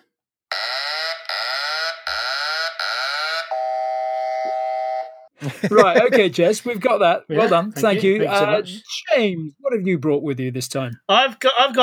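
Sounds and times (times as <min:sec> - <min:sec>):
loud harsh quiz buzzer tone: 0:00.5 - 0:05.3
steady electronic alarm note: 0:00.5 - 0:05.3
laughter: 0:05.4 - 0:08.8
speech: 0:05.4 - 0:11.8.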